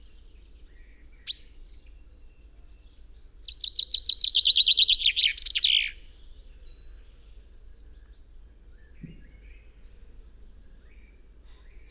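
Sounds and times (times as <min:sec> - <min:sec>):
common chaffinch song of repeated chipping notes: 0:03.4 - 0:06.0.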